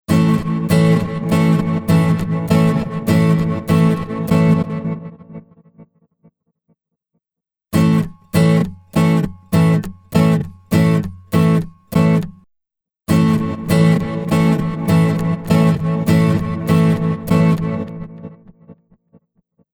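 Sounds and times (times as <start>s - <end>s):
acoustic guitar with seesaw micropitch effect: 0.1s - 5.5s, 7.7s - 12.5s, 13.1s - 18.6s.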